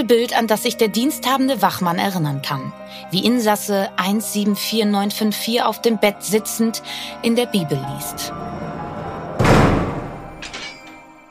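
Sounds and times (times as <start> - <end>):
speech: 0.0 - 8.8
heavy prison cell door slamming shut: 8.1 - 11.0
soft metallic clanks: 9.4 - 11.1.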